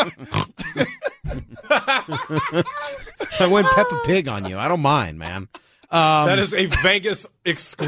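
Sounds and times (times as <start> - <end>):
man snorting with excitement: 0.0 - 0.6
speech: 0.0 - 1.0, 2.1 - 7.8
laughter: 0.0 - 7.8.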